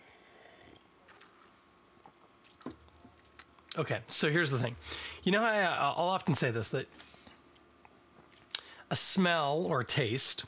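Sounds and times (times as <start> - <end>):
swallowing: 0.2 - 3.5
sipping a drink: 0.3 - 3.5
speech: 3.8 - 7.1, 8.9 - 10.4.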